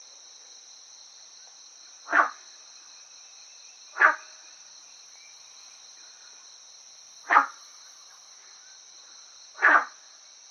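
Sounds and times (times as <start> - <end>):
Guenther's frog calling: 2.0 - 2.5, 3.9 - 4.5, 7.2 - 7.8, 9.5 - 10.0.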